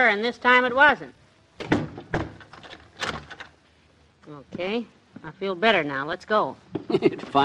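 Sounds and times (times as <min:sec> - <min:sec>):
speech: 0:00.0 - 0:01.8, 0:04.3 - 0:07.4
front door latch clunk: 0:01.6 - 0:03.5
front door rattled and tugged: 0:01.6 - 0:03.6.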